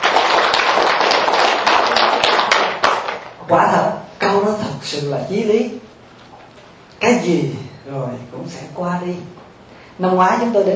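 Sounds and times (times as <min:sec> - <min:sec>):
crowd applauding: 0:00.0 - 0:03.4
speech: 0:03.5 - 0:04.0, 0:04.9 - 0:05.9, 0:07.0 - 0:09.4, 0:10.0 - 0:10.7.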